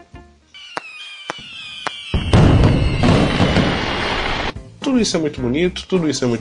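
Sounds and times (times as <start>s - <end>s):
rising whistle of fireworks: 0.5s - 4.6s
fireworks exploding in crackling pops: 0.6s - 4.6s
speech: 4.9s - 6.3s.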